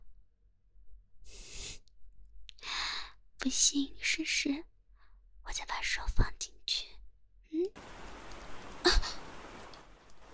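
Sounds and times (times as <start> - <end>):
speech: 3.4 - 4.7, 5.5 - 7.0, 7.6 - 8.0
brief louder splash of drops: 7.8 - 10.3
steady soft rain pattering and hissing: 7.8 - 10.3.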